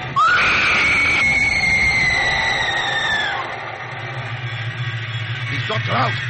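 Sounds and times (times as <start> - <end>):
low engine-like rumble: 0.0 - 6.2
aircraft bomb hatch doors grinding open with metallic screech: 0.2 - 3.5
speech: 5.8 - 6.2.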